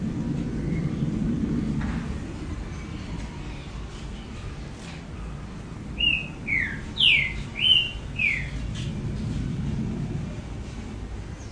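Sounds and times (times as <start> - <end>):
low background hum: 0.0 - 11.4
double-collared seedeater song: 6.0 - 8.6.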